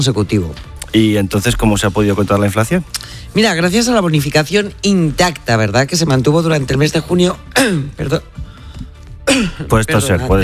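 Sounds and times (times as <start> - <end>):
speech: 0.0 - 8.5, 9.3 - 10.4
person clearing throat: 7.5 - 8.0, 9.2 - 9.8
person coughing: 7.5 - 8.1, 9.2 - 9.8.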